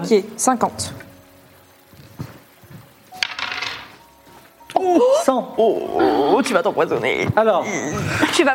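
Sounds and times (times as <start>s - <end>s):
speech: 0.0s - 1.0s, 4.9s - 8.5s
dice rolling across a hard tabletop for a game check: 3.2s - 4.0s.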